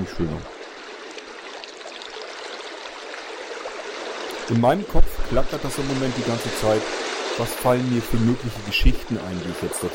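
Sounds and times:
speech: 0.0s - 0.6s, 4.5s - 9.9s
ocean surf rushing: 3.8s - 9.9s.

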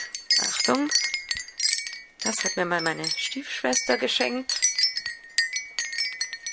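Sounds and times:
shell wind chime clinking: 0.0s - 6.5s
speech: 0.7s - 1.2s, 2.3s - 4.6s.

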